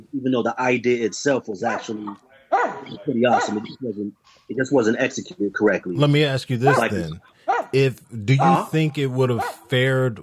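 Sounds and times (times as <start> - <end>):
speech: 0.2 - 10.2
dog barking and whining: 1.7 - 3.8, 6.6 - 7.7.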